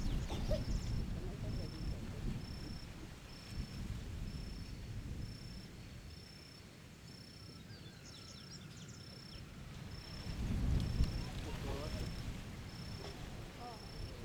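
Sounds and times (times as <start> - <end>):
low wind noise in a rural setting: 0.0 - 6.1, 9.5 - 14.2
cricket chirping: 0.0 - 7.5, 9.0 - 14.2.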